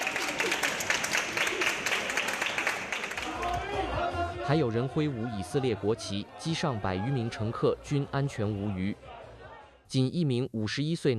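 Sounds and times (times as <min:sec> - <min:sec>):
crowd of families applauding at an airport arrival: 0:00.0 - 0:04.0
excited voices and cheering: 0:01.4 - 0:09.8
speech: 0:04.5 - 0:09.1, 0:09.9 - 0:11.1.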